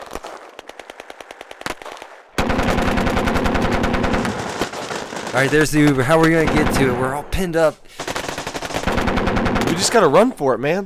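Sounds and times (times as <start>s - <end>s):
machine gun fire: 2.4s - 10.3s
speech: 5.3s - 8.0s, 9.7s - 10.8s.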